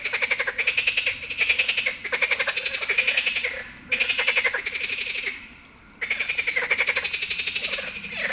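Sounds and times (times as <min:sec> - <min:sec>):
marsh frog giving rattling croaks in Heviz Hungary: 0:00.0 - 0:05.4, 0:06.0 - 0:08.3.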